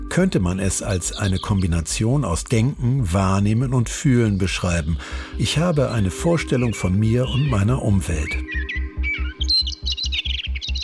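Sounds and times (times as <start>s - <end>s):
blackbird singing: 0.0s - 10.8s
steady regular low pulsing throb: 0.0s - 10.8s
speech: 0.2s - 8.9s.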